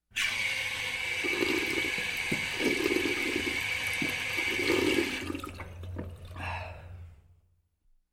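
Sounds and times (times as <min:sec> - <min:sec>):
person drinking from a drinking fountain: 0:01.0 - 0:06.8.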